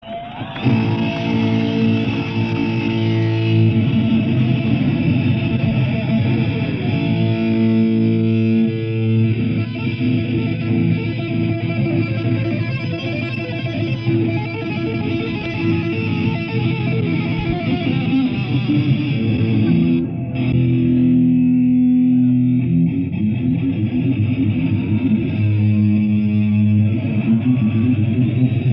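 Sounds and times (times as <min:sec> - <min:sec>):
live guitar solo at a concert in Novorossiysk: 0:00.0 - 0:28.7.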